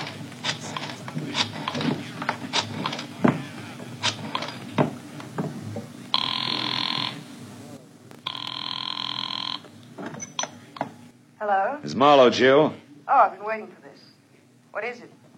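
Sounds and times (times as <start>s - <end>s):
busy clattering noise: 0.0s - 11.2s
old-fashioned telephone bell ringing on the line: 6.2s - 7.3s, 8.3s - 9.7s
speech: 11.5s - 13.8s, 14.8s - 15.2s.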